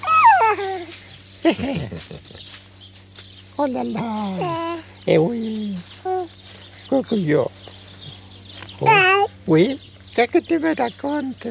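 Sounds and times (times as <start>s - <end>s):
dog whimpering: 0.0s - 0.9s, 4.0s - 4.9s, 8.8s - 9.3s
dog yipping: 0.0s - 0.9s, 8.8s - 9.3s
laughter: 0.1s - 2.6s
speech: 1.4s - 2.7s, 3.6s - 7.7s, 8.8s - 11.4s.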